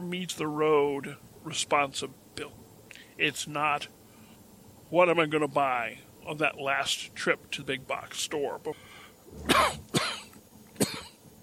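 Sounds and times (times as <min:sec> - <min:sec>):
speech: 0:00.1 - 0:02.6, 0:03.2 - 0:04.0, 0:04.9 - 0:10.0
person coughing harshly in a coughing fit: 0:09.4 - 0:11.2.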